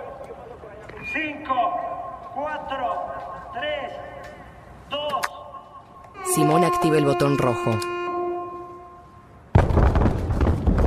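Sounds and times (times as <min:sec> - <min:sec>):
speech: 0:01.1 - 0:04.2, 0:06.2 - 0:08.0
large old building exploding: 0:09.5 - 0:10.8.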